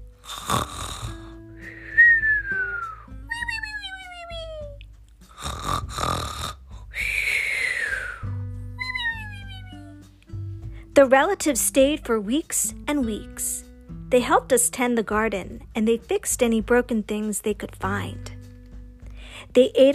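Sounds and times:
several people breathing and snoring while asleep: 0:00.2 - 0:01.9, 0:05.3 - 0:08.3
high whistling exhales sliding downward in pitch: 0:01.6 - 0:03.1, 0:07.0 - 0:08.3
speech: 0:11.0 - 0:13.5, 0:14.1 - 0:18.3, 0:19.5 - 0:19.9.

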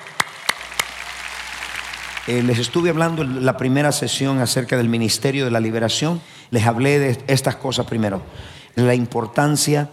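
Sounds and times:
sharp claps: 0:00.0 - 0:03.4
crowd applauding: 0:00.0 - 0:03.8
speech: 0:02.3 - 0:09.9.

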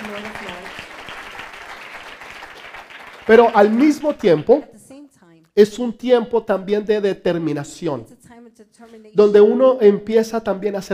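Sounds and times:
audience applauding: 0:00.0 - 0:04.7
speech: 0:03.3 - 0:04.7, 0:05.6 - 0:10.9.

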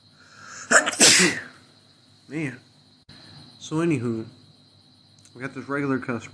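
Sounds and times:
person sneezing: 0:00.4 - 0:01.6
speech: 0:01.2 - 0:01.5, 0:02.3 - 0:02.7, 0:03.7 - 0:04.4, 0:05.4 - 0:06.3.

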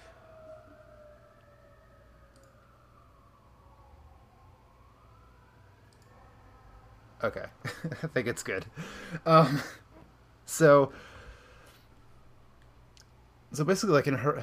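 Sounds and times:
emergency vehicle siren wailing outside: 0:00.0 - 0:08.0
speech: 0:07.2 - 0:09.8, 0:10.5 - 0:11.1, 0:13.5 - 0:14.4.

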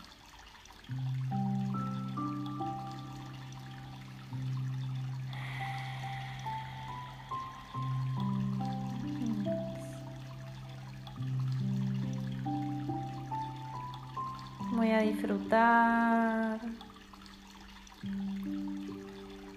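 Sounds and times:
river water flowing: 0:00.0 - 0:19.5
soft sustained musical tones: 0:00.0 - 0:19.5
speech: 0:14.9 - 0:16.8.

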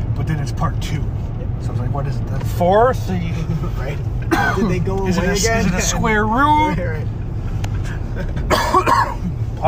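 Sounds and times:
speech: 0:00.2 - 0:07.2, 0:08.1 - 0:09.6
cough: 0:04.3 - 0:04.7, 0:08.4 - 0:09.3.

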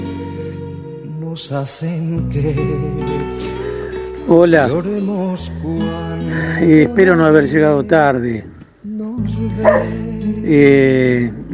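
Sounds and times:
speech: 0:01.4 - 0:03.6, 0:04.3 - 0:08.6, 0:09.2 - 0:11.5
dogs barking on a rainy day: 0:09.6 - 0:10.0.

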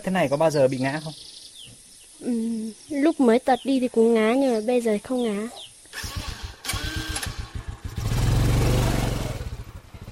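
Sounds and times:
speech: 0:00.0 - 0:01.4, 0:02.2 - 0:06.1
motorcycle engine puttering and revving: 0:05.9 - 0:10.1.

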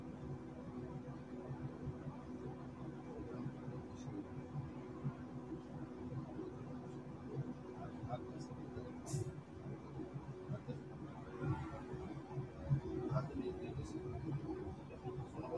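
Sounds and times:
bus engine rumble and hum inside a moving bus: 0:00.0 - 0:15.5.

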